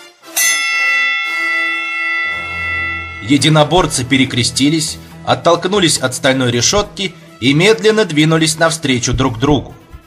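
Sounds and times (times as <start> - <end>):
gong struck to open a wrestling bout: 0.4 - 7.0
speech: 3.2 - 9.8.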